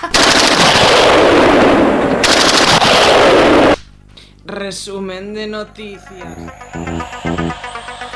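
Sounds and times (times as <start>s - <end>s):
heavy gunfire of a bombardment: 0.2s - 3.8s
speech: 4.5s - 7.7s.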